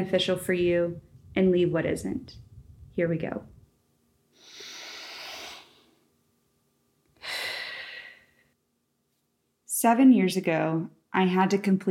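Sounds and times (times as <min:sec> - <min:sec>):
speech: 0:00.0 - 0:02.4, 0:03.0 - 0:03.5, 0:09.8 - 0:11.8
deep breaths: 0:04.3 - 0:06.0, 0:07.2 - 0:08.6.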